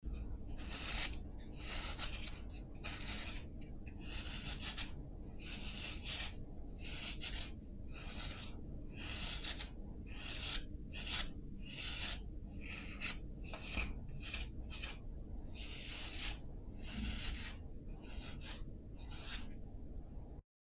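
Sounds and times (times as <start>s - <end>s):
comb: 0.1s - 15.0s, 15.6s - 19.6s.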